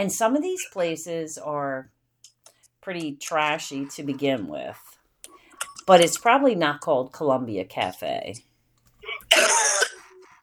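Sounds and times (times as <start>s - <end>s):
speech: 0.0s - 2.0s, 2.8s - 5.0s, 5.9s - 8.5s
cough: 9.1s - 10.0s.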